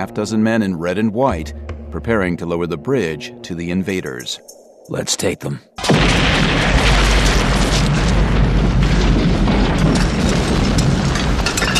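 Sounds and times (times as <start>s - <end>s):
speech: 0.0s - 6.7s
crackling debris: 5.8s - 11.7s
loud sustained explosion roar with deep rumbling: 5.8s - 11.7s.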